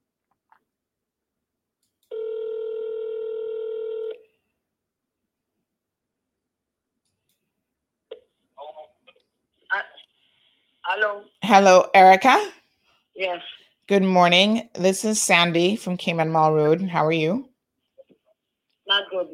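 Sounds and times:
electronic ringback tone of an outgoing phone call: 2.1 - 4.2
speech: 11.0 - 12.6, 13.2 - 17.5, 19.0 - 19.3.

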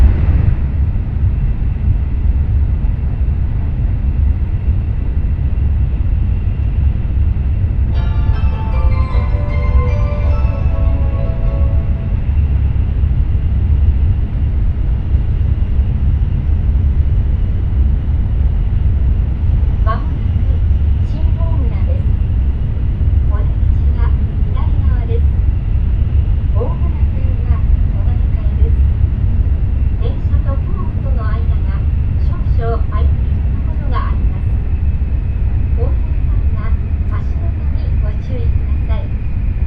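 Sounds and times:
low rumble inside a Nishi Kyushu Shinkansen high-speed train in motion: 0.0 - 39.6
short chime melody on a high-speed train: 7.9 - 12.8.

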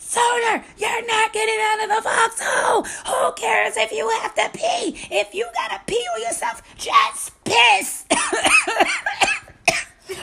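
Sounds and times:
speech: 0.5 - 9.4
person coughing sharply: 8.1 - 10.2
person laughing breathlessly: 8.3 - 9.3.

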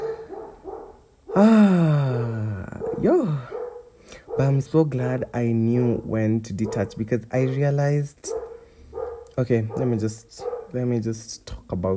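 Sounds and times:
household dog barking: 0.0 - 1.4, 2.7 - 4.7, 6.0 - 7.6, 8.2 - 10.8
speech: 1.4 - 1.9, 4.4 - 8.3, 9.4 - 11.9.

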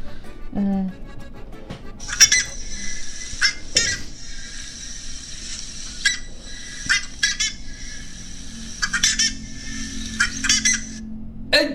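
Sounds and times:
speech: 0.6 - 1.0
buff-necked ibis calling: 2.0 - 11.1.

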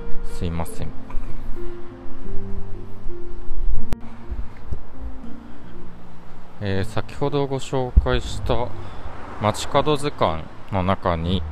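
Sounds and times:
speech: 0.4 - 2.4, 6.6 - 11.5
passing car engines droning: 4.9 - 11.5
busy street traffic roar: 7.9 - 11.5.

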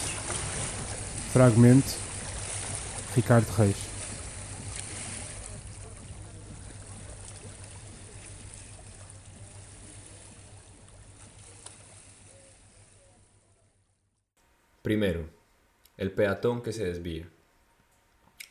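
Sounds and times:
lapping water of the Tagus river in Lisbon: 0.0 - 13.3
low hum of a boat engine: 0.0 - 14.3
speech: 1.3 - 2.0, 3.2 - 3.9, 14.9 - 15.4, 16.0 - 17.4
faint voices: 4.8 - 14.0.

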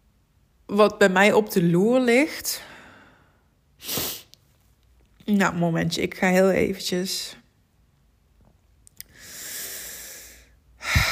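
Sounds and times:
speech: 0.7 - 2.7, 3.8 - 4.1, 5.3 - 7.4
calm breathing: 2.6 - 3.6, 9.0 - 11.0.

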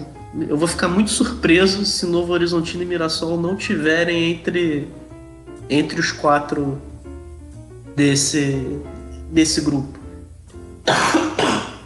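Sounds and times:
speech: 0.4 - 5.0, 5.7 - 6.9, 8.0 - 10.0, 10.9 - 11.4
harsh explosive coughs: 10.9 - 11.8.

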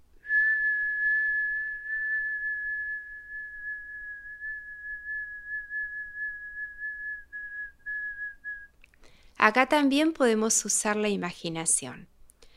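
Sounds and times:
person whistling a long tone while exhaling: 0.2 - 8.7
speech: 9.4 - 12.1.

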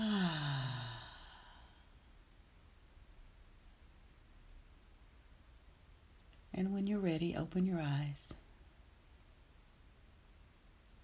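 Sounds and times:
deep breath out during a guided breathing exercise: 0.0 - 2.0
speech: 6.6 - 8.4.

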